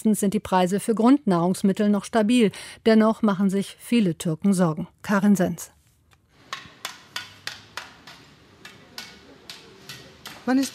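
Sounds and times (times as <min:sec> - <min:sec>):
speech: 0:00.0 - 0:05.8, 0:10.4 - 0:10.7
hammer blows with sharp metallic strikes at a construction site in Istanbul Turkey: 0:06.4 - 0:10.7
low murmur of a busy outdoor construction site in Istanbul Turkey: 0:06.5 - 0:10.7.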